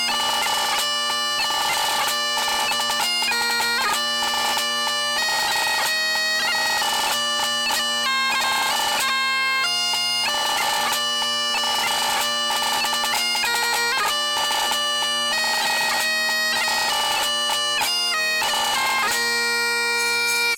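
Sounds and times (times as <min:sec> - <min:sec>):
christmas song: 0:00.0 - 0:20.5.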